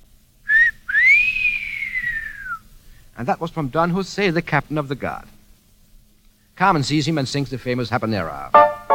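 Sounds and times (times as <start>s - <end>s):
person whistling: 0.5s - 2.7s
speech: 3.2s - 5.4s, 6.6s - 8.8s.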